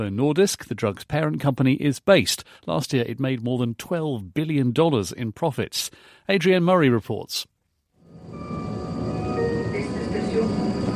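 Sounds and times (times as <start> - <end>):
speech: 0.0 - 7.5
sustained whining tone of an arriving train: 8.0 - 10.9
train arriving at a station, rumbling: 8.1 - 10.9.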